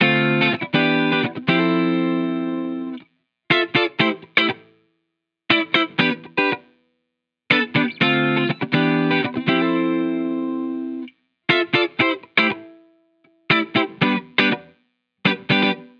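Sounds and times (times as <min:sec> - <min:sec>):
1970s style guitars in A minor: 0:00.0 - 0:04.8, 0:05.5 - 0:06.7, 0:07.5 - 0:15.9.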